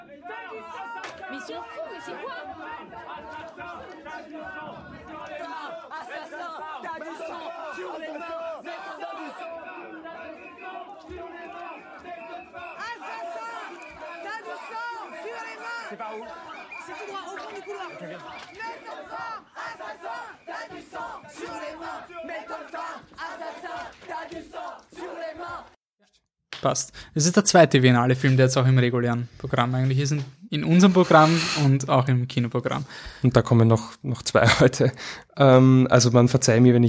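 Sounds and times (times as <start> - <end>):
laughter: 0.0 - 25.5, 34.4 - 35.1
louder yells rising out of the crowd: 0.0 - 25.8
protest crowd shouting and chanting: 0.0 - 25.8
speech: 1.4 - 5.3, 15.9 - 25.7, 26.6 - 36.8.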